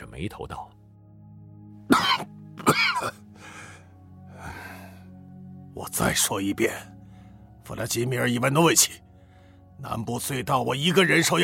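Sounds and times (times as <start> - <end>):
speech: 0.2 - 0.7, 3.0 - 3.3, 5.8 - 6.9, 7.7 - 9.0, 9.8 - 11.4
man clearing his throat: 1.9 - 3.2
man coughing while choking on smoke at a table: 1.9 - 3.2.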